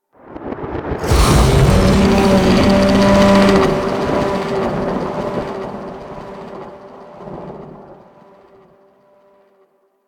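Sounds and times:
sun monster bellow: 0:01.0 - 0:07.0.

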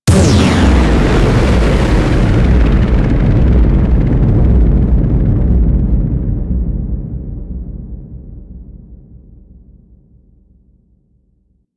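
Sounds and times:
giant space explosion: 0:00.1 - 0:09.2.

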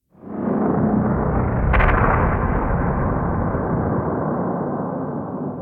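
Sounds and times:
distant seismic explosion outdoors: 0:00.3 - 0:05.5.

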